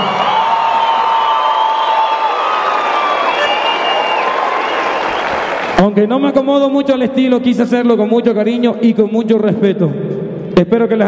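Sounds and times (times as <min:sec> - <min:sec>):
large audience clapping: 0:00.0 - 0:06.0
speech: 0:05.9 - 0:11.0.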